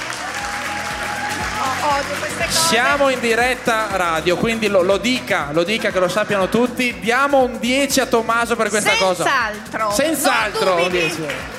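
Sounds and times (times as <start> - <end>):
audience applause at a school presentation: 0.0 - 4.8, 10.2 - 11.5
speech: 1.8 - 11.5.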